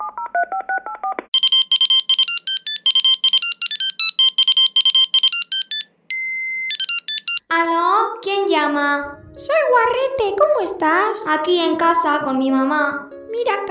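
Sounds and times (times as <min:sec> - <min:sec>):
mobile phone keypad beeps while dialing: 0:00.0 - 0:07.4
mobile phone warbling tone: 0:00.0 - 0:07.4
speech: 0:08.8 - 0:13.6.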